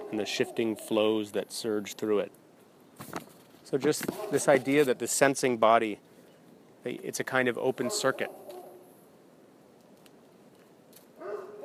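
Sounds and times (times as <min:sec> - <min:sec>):
dog barking outdoors: 0:00.0 - 0:00.9, 0:04.1 - 0:04.7, 0:07.8 - 0:08.9, 0:11.2 - 0:11.6
speech: 0:00.1 - 0:02.4, 0:03.0 - 0:06.1, 0:06.8 - 0:08.5.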